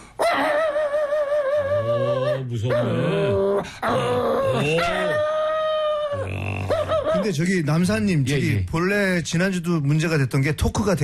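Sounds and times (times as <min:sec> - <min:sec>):
man imitating a dog's snarling yelps and low growls: 0:00.2 - 0:07.4
man imitating a house dog barking fiercely at a burglar: 0:00.2 - 0:07.4
speech: 0:02.5 - 0:05.4, 0:06.2 - 0:11.0.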